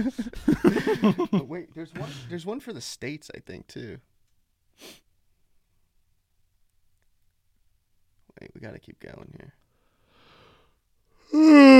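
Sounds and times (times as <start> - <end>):
laughter: 0.0 - 2.3
speech: 0.0 - 4.1, 8.4 - 9.6, 11.3 - 11.7
loud yawn into a microphone: 11.3 - 11.7.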